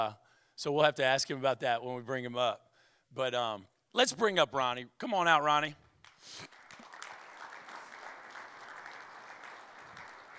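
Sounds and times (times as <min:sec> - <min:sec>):
speech: 0:00.0 - 0:06.6
light polite audience clapping: 0:06.0 - 0:10.3.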